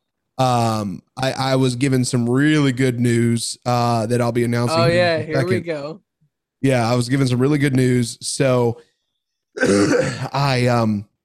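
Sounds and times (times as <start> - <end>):
speech: 0.4 - 6.0, 6.6 - 8.9, 9.6 - 11.1
rough throat-clearing coughs from a person with mucus congestion: 9.6 - 10.4.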